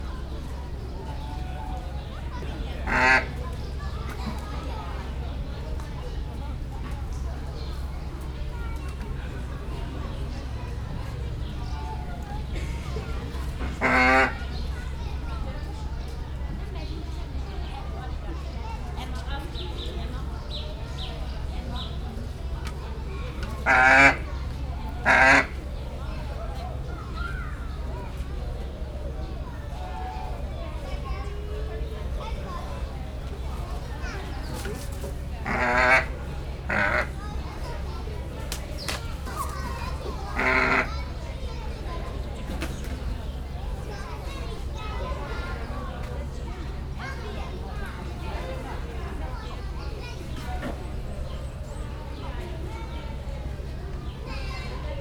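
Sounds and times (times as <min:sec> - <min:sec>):
group of children in the background at a zoo: 0:00.0 - 0:54.9
steppe eagle calling at a zoo: 0:35.4 - 0:37.6.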